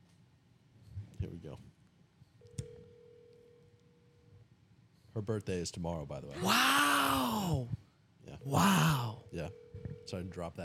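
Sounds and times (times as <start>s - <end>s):
speech: 1.2s - 1.8s, 5.2s - 10.6s
outgoing call ringing tone through a telephone handset: 2.6s - 4.2s, 9.4s - 10.3s.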